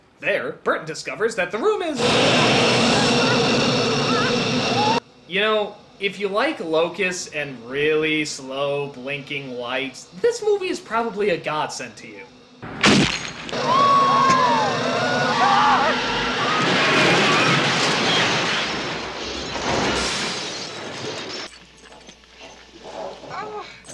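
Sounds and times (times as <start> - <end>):
speech: 0.2 - 12.4
shouting voices: 13.6 - 17.6
car smashing into a brick wall and a metal gate: 16.5 - 21.5.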